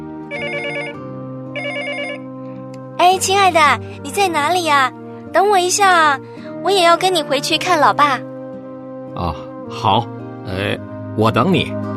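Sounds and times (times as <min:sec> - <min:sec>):
warbling trilling telephone ring of an incoming call on a bus: 0:00.3 - 0:01.0, 0:01.6 - 0:02.2
speech: 0:03.1 - 0:08.3, 0:09.2 - 0:11.9.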